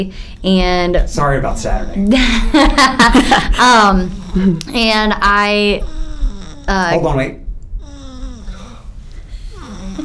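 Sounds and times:
speech: 0:00.0 - 0:05.9, 0:06.7 - 0:07.4
low steady rumble: 0:00.0 - 0:10.0
laughter: 0:02.1 - 0:03.6
sleeping baby snoring softly: 0:04.1 - 0:04.6, 0:05.7 - 0:07.0, 0:07.8 - 0:10.0.

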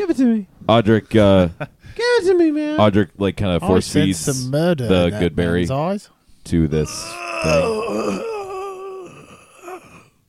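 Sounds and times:
speech: 0:00.0 - 0:08.3
person giving a brief final groan: 0:06.8 - 0:10.2
person voicing a dying bloody gasp with a moaning wail: 0:06.8 - 0:10.2.

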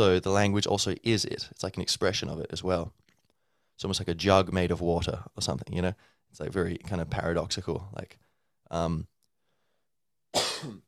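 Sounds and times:
speech: 0:00.0 - 0:03.0, 0:03.8 - 0:09.1, 0:10.3 - 0:10.8
person with a sore throat coughing: 0:10.3 - 0:10.8.

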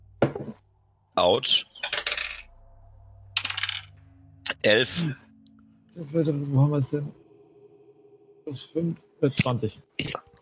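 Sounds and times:
faint low hum: 0:00.0 - 0:10.4
speech: 0:01.2 - 0:01.7, 0:04.6 - 0:05.2, 0:06.0 - 0:07.2, 0:08.5 - 0:10.4
dice rolling on a table during a tabletop role-playing game: 0:01.8 - 0:02.5, 0:03.4 - 0:03.9.

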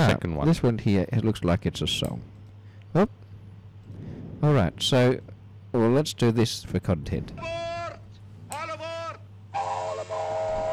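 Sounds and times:
steady low hum: 0:00.0 - 0:10.7
speech: 0:00.1 - 0:03.2, 0:04.4 - 0:07.7
animated cartoon train whistle chiming in voice-like tones: 0:08.8 - 0:10.7.

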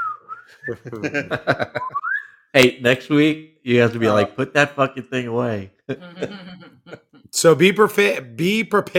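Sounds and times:
speech: 0:00.6 - 0:08.9
laughter: 0:00.7 - 0:02.0, 0:05.9 - 0:07.3
slide whistle gliding upward: 0:01.8 - 0:02.4.

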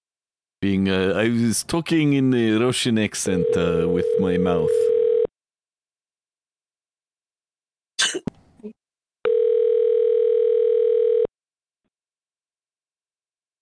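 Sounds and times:
speech: 0:00.6 - 0:05.0
telephone dial tone while a call is being placed: 0:03.5 - 0:05.3, 0:09.2 - 0:11.3
noisy cough-like burst: 0:08.0 - 0:08.3.

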